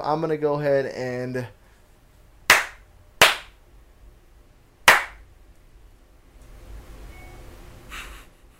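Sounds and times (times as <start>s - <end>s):
speech: 0.0s - 1.6s
sharp slaps: 2.5s - 3.6s, 4.8s - 5.2s
faint brief electronic notification chime: 7.1s - 7.5s.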